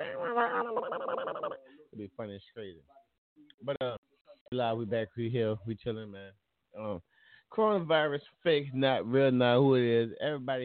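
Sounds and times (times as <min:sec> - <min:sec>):
person imitating a pig being chased: 0:00.0 - 0:01.7
speech: 0:00.3 - 0:10.6.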